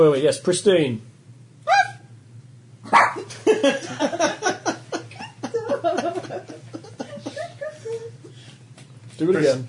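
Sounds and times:
speech: 0.0 - 1.1, 9.2 - 9.6
dog barking and yipping excitedly: 2.9 - 3.3
laughter: 3.3 - 8.4.

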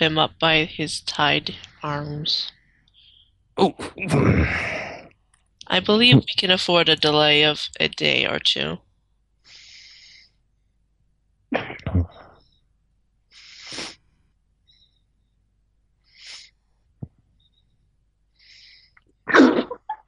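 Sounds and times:
speech: 0.0 - 2.6, 3.6 - 4.8, 5.7 - 8.8, 11.5 - 11.9
person sneezing: 3.8 - 5.0, 11.6 - 12.3, 19.3 - 19.8
hissy breaths: 9.5 - 10.4, 13.3 - 14.0
person sniffing: 13.4 - 14.0, 16.2 - 16.5.

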